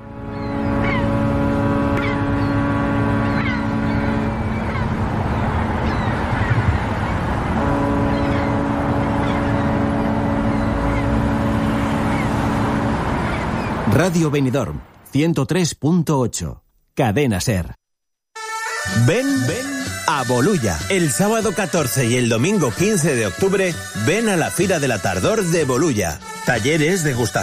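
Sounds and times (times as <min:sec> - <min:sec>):
boat engine droning: 0:00.0 - 0:14.4, 0:18.4 - 0:27.4
speech: 0:14.0 - 0:17.8, 0:18.8 - 0:27.4.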